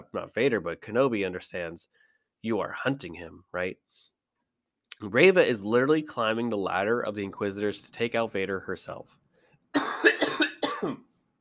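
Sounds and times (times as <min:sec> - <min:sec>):
speech: 0:00.1 - 0:04.1, 0:05.0 - 0:10.1, 0:10.8 - 0:11.1
person coughing harshly: 0:09.8 - 0:11.1.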